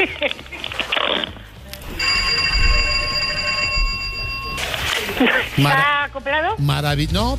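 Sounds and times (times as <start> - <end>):
house doorbell ringing over a phone line: 1.8 - 5.6
speech: 5.2 - 7.3.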